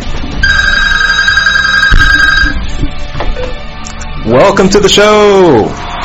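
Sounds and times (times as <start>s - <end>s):
telephone ringing with a steady electronic trill: 0.4s - 2.8s
speech: 4.3s - 5.9s.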